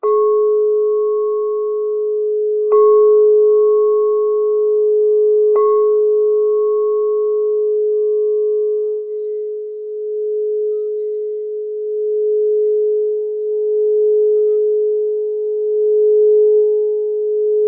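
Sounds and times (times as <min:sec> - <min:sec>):
gold-coloured crystal singing bowl strikes: 0:00.0 - 0:04.4, 0:08.8 - 0:16.8
gold-coloured crystal singing bowl ringing: 0:00.0 - 0:17.6.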